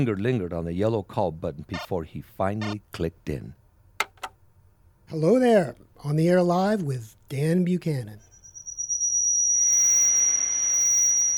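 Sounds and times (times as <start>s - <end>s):
speech: 0.0s - 3.6s, 5.1s - 8.3s
shrill audio feedback squeal through speakers and a desk mic: 8.3s - 11.3s.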